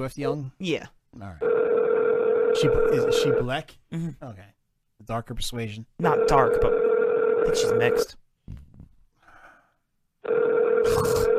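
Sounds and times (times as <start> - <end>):
speech: 0.0 - 1.5, 2.6 - 8.6
telephone ringing with a steady electronic tone: 1.4 - 3.4, 6.1 - 8.1, 10.2 - 11.3.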